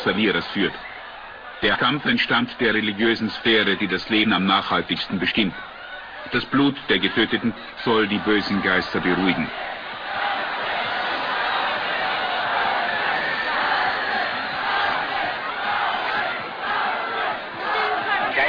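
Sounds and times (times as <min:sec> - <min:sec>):
speech: 0:00.0 - 0:00.9, 0:01.6 - 0:09.8
spectators rhythmically shouting bets at cockfight: 0:00.0 - 0:18.4.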